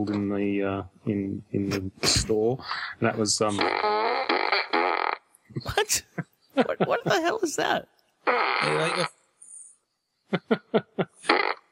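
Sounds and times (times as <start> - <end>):
speech: 0.0 - 4.4, 5.6 - 9.2, 10.3 - 11.4
toy blaster electronic fart sound: 3.6 - 5.2, 8.3 - 9.1, 11.3 - 11.6
laughter: 6.1 - 7.3, 10.3 - 11.2.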